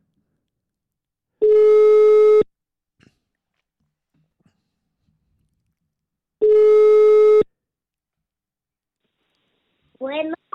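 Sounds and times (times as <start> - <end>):
telephone ringback tone: 1.4 - 2.5, 6.4 - 7.5.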